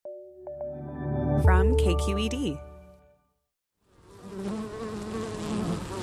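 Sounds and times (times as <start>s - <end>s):
speech: 1.4s - 2.7s
many bees buzzing around wooden beehives in an almond orchard: 3.9s - 6.0s.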